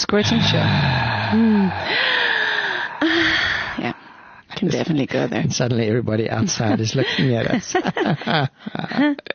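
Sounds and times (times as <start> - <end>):
heavy raspy breathing in and out with a moaning voiced edge: 0.0 - 5.3
speech: 0.1 - 2.0, 4.6 - 9.3.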